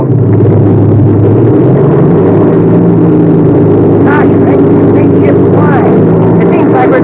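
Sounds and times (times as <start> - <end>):
warmed-up engine of a new factory-fresh airplane roaring on takeoff: 0.0 - 7.0
faint voices: 3.8 - 7.0.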